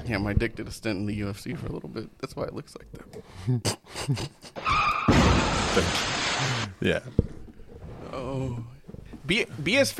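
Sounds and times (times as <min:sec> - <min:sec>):
speech: 0:00.1 - 0:07.3, 0:08.1 - 0:09.9
tire screech of a car crash: 0:04.6 - 0:06.7
crunching, shattering car crash impact: 0:05.0 - 0:06.7.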